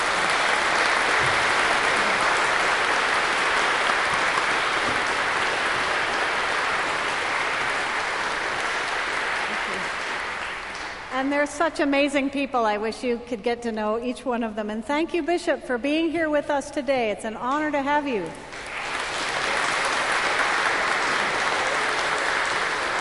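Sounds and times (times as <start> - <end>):
church audience applauding: 0.0 - 11.2, 18.5 - 22.9
speech: 11.2 - 18.5.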